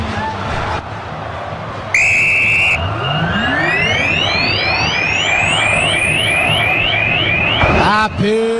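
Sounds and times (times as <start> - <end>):
stadium crowd roar at the Mineirão stadium: 0.0 - 8.5
referee's final whistle blast at the Mineirão stadium: 2.0 - 8.5.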